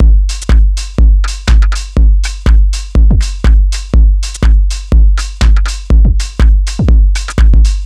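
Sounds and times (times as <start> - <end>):
dry drum machine: 0.0 - 7.8.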